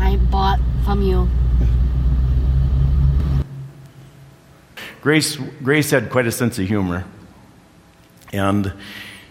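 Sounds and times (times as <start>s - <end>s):
convertible car engine rumbling and revving: 0.0s - 3.6s
speech: 5.0s - 7.2s, 8.3s - 9.1s.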